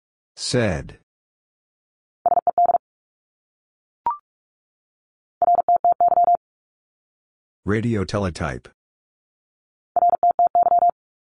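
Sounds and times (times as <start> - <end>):
speech: 0.4 - 1.0, 7.6 - 8.8
fast Morse code tones sending abbreviations: 2.3 - 2.8, 5.4 - 6.4, 10.0 - 11.0.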